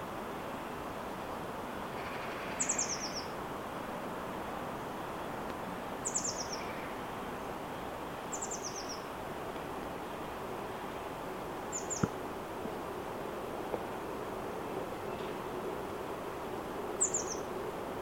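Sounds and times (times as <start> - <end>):
steady background noise: 0.0 - 17.9
Eurasian blue tit Cyanistes caeruleus calls: 1.9 - 3.3, 6.0 - 7.0, 8.3 - 9.0, 11.7 - 12.2, 17.0 - 17.5.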